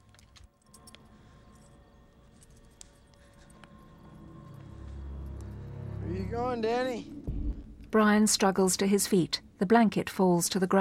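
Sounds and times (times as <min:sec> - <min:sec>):
car keys jangling as someone walks away carrying them: 0:00.0 - 0:04.3
low rumble: 0:04.0 - 0:08.6
speech: 0:06.3 - 0:07.1, 0:07.9 - 0:10.7.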